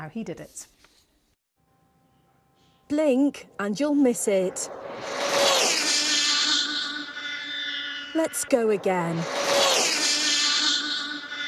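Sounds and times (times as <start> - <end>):
speech: 0.0 - 0.9, 2.9 - 5.5, 8.2 - 9.4
high-speed remote control car whizzing past with buzzing motor whine: 5.0 - 11.4.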